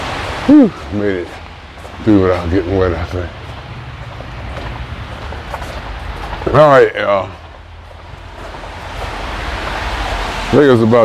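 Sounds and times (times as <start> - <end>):
rain falling: 0.0 - 11.0
water dripping off awnings: 0.0 - 11.0
speech: 0.5 - 1.4, 2.0 - 3.4, 6.5 - 7.4, 10.5 - 11.0.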